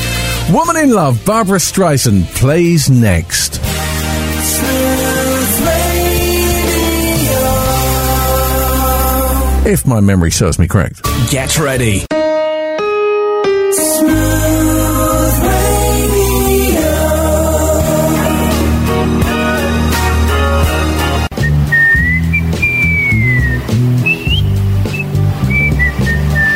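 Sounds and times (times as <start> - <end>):
steady music: 0.0 - 9.9, 11.0 - 26.5
speech: 0.5 - 3.7, 9.6 - 12.2
person whistling a wavering clear melody: 21.3 - 26.5.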